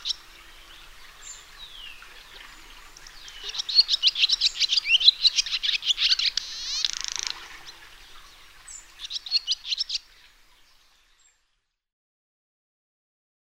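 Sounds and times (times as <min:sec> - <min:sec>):
swallow twittering: 0:01.1 - 0:10.1.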